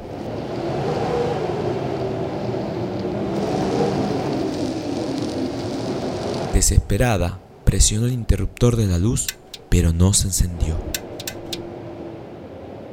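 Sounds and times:
rain in a storm: 0:00.0 - 0:06.6
speech: 0:06.6 - 0:11.0.

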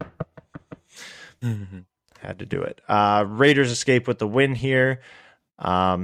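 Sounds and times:
sharp knocks on wood: 0:00.0 - 0:00.9
speech: 0:01.0 - 0:06.0.

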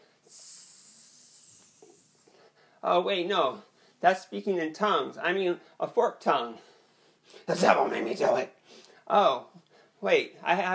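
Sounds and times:
person hissing like a snake: 0:00.2 - 0:02.5
speech: 0:02.8 - 0:06.7, 0:07.3 - 0:10.7.

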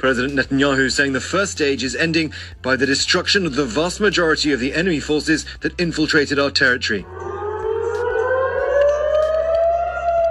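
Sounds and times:
speech: 0:00.0 - 0:07.3
air raid sirens wailing during an attack in Israel: 0:07.0 - 0:10.3.

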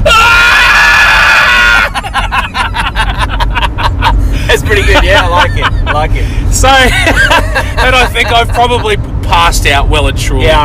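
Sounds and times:
voice imitating the squeal of cauterizing a stump with a burning log: 0:00.0 - 0:02.0
laughter: 0:01.6 - 0:06.2, 0:06.8 - 0:08.8
speech: 0:05.1 - 0:10.6.

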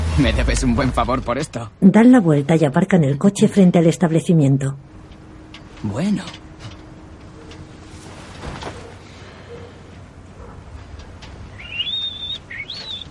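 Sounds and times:
quiet noise: 0:00.0 - 0:13.0
speech: 0:00.2 - 0:04.9, 0:05.8 - 0:06.4
young man whistling calmly in a parked car: 0:11.5 - 0:13.0.

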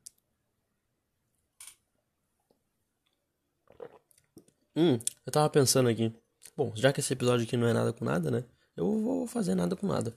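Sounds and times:
slurping coffee: 0:03.7 - 0:04.1
speech: 0:04.8 - 0:10.1.

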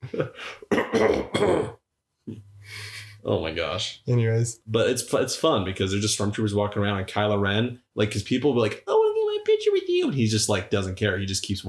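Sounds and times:
speech: 0:00.1 - 0:09.0, 0:09.6 - 0:11.6
person in a rough coughing fit: 0:00.5 - 0:01.8.

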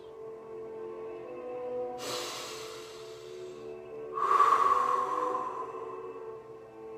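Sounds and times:
soft steady hum of sustained tones: 0:00.9 - 0:06.9
long deep breaths drawn in: 0:02.0 - 0:06.5.

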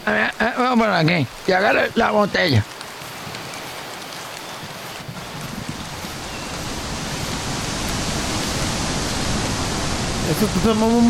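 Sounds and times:
speech: 0:00.0 - 0:02.8, 0:10.3 - 0:11.0
heavy rain pouring down: 0:00.0 - 0:11.0.

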